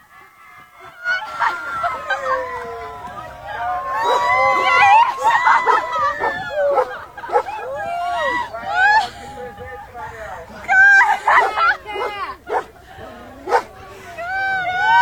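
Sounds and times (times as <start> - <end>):
laughter: 0.0 - 15.0
overlapping crowd voices and chatter: 0.0 - 15.0
dog barking and yipping: 5.4 - 7.6, 11.3 - 12.7.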